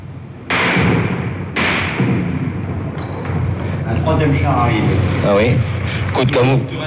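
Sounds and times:
bursts of gunfire: 0:00.5 - 0:03.6
bullets striking a wall: 0:00.5 - 0:03.8
speech: 0:04.0 - 0:06.8.

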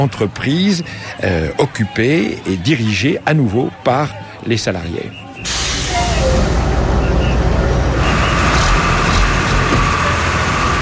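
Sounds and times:
speech: 0:00.0 - 0:05.6
road traffic: 0:05.1 - 0:10.8
bus engine rumble from inside a moving bus: 0:05.2 - 0:10.8.

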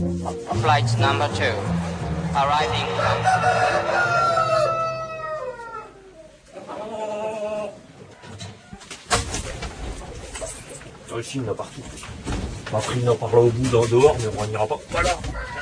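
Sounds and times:
outdoor noise: 0:00.0 - 0:15.6
speech: 0:00.2 - 0:04.2, 0:11.2 - 0:15.6
rooster crowing: 0:01.3 - 0:06.3, 0:15.3 - 0:15.6.

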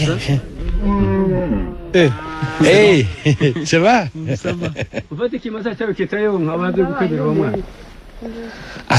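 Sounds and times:
speech: 0:00.0 - 0:08.9
cows mooing in long low calls: 0:00.6 - 0:03.2
laughter: 0:02.4 - 0:05.4.

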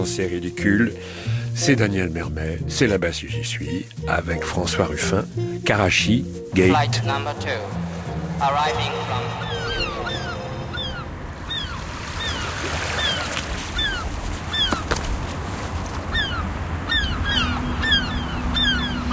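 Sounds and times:
speech: 0:00.0 - 0:07.8, 0:08.4 - 0:09.5
seagulls calling overhead near the harbor: 0:06.6 - 0:19.1
steady wash of water: 0:07.1 - 0:16.1.

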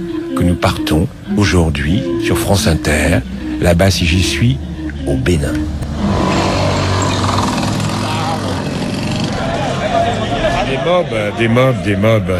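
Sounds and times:
speech: 0:00.0 - 0:06.3, 0:10.8 - 0:12.3
busy city traffic in Cotonou Benin: 0:00.0 - 0:12.3
small moped taxi engine buzzing in a street in Cotonou Benin: 0:05.6 - 0:10.2.

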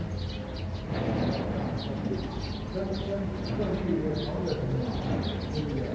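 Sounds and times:
birds chirping: 0:00.0 - 0:05.9
murmuring voices: 0:01.9 - 0:05.9
speech: 0:02.8 - 0:05.9.

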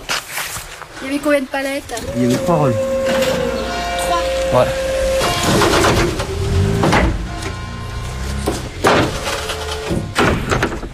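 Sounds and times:
speech: 0:01.0 - 0:04.8, 0:05.5 - 0:06.2
heavy metal doors on a delivery truck slamming shut: 0:04.9 - 0:07.5, 0:08.4 - 0:10.9.

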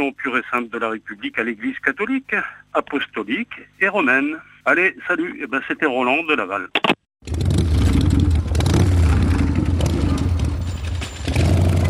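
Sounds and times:
speech: 0:00.0 - 0:07.4
motorcycle engine revving: 0:07.2 - 0:11.8.

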